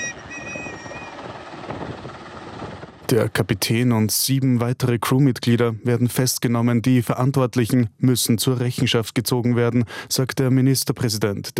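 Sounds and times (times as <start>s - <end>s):
helicopter flying overhead: 0.0s - 3.6s
speech: 3.1s - 11.5s.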